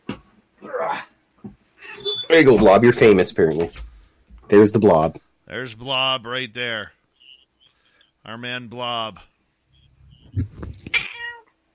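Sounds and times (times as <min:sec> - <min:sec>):
speech: 0:02.3 - 0:03.8, 0:04.5 - 0:07.0, 0:08.2 - 0:09.3
cat meowing: 0:10.9 - 0:11.5.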